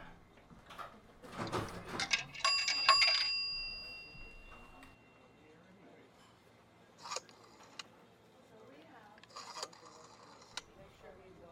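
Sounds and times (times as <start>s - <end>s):
rotary phone rattling handling: 1.3s - 4.7s
rotary phone brief bell-like ding: 2.5s - 5.2s
rotary phone dial whirring clicks: 7.0s - 7.9s, 9.2s - 10.7s.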